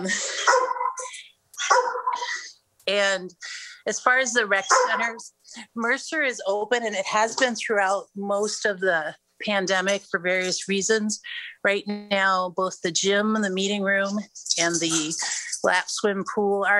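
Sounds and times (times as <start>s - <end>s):
speech: 0.0s - 0.8s, 2.9s - 16.7s
dog barking: 0.4s - 1.0s, 1.6s - 2.2s, 4.7s - 5.0s.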